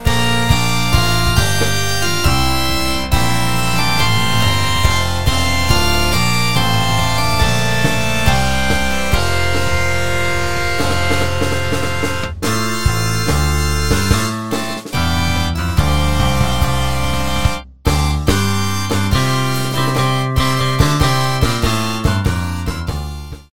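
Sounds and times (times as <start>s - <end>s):
rocker organ: 0.0s - 23.5s.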